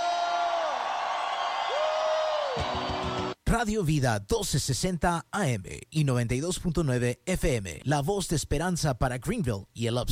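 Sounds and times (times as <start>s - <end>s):
dense crowd roaring and cheering: 0.0s - 3.4s
people whooping with joy: 0.0s - 3.4s
speech: 3.5s - 10.1s.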